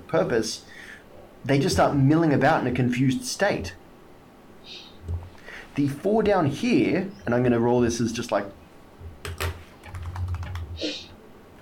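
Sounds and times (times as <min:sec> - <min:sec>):
low steady hum: 0:00.0 - 0:11.6
speech: 0:00.1 - 0:03.8, 0:05.8 - 0:08.6
rapid typing on a computer keyboard during a tabletop dice game session: 0:09.2 - 0:10.8.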